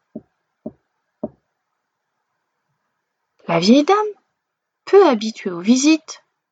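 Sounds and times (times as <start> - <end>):
fox knocking on a wooden door with frozen paws: 0.2 - 1.4
speech: 3.5 - 4.2, 4.9 - 6.2.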